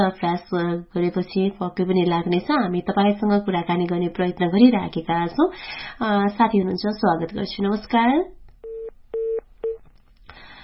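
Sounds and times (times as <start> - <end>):
speech: 0.0 - 8.4
telephone keypad touch-tone beeps: 8.6 - 9.8.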